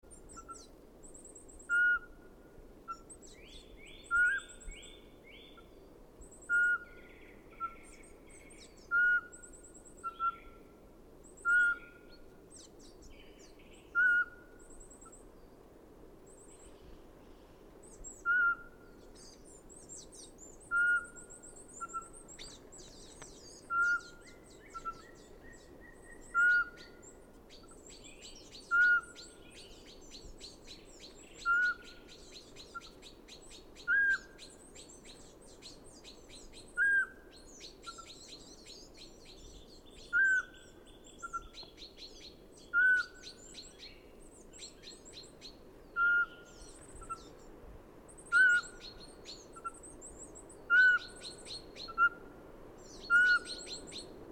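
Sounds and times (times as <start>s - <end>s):
pygmy owl calling in Forez: 0.1s - 0.7s, 1.6s - 2.3s, 4.1s - 4.8s, 6.4s - 8.0s, 8.8s - 10.6s, 11.3s - 12.7s, 13.9s - 15.1s, 17.9s - 19.3s, 19.9s - 22.6s, 23.6s - 39.4s, 40.0s - 43.9s, 44.5s - 47.4s, 48.1s - 54.1s.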